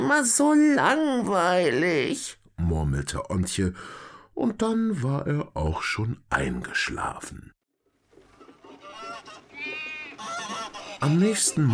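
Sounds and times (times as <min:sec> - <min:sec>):
speech: 0:00.1 - 0:07.6, 0:11.0 - 0:11.7
goose honking cackle: 0:08.4 - 0:11.7
goat bleating: 0:08.5 - 0:11.7.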